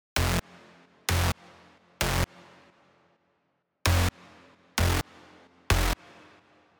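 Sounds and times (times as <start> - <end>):
bass: 0.2 - 0.4, 1.1 - 1.4, 2.0 - 2.3, 3.9 - 4.1, 4.8 - 5.0, 5.7 - 6.0.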